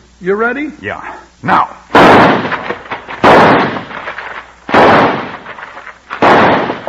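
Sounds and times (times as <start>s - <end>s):
speech: 0.2s - 2.4s
gunshots fired at a man: 1.9s - 6.8s.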